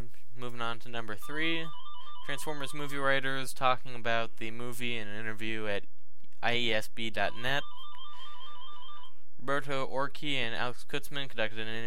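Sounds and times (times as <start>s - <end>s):
speech: 0.6s - 7.8s, 9.4s - 11.8s
mobile phone ringing: 1.2s - 3.2s, 7.3s - 9.2s.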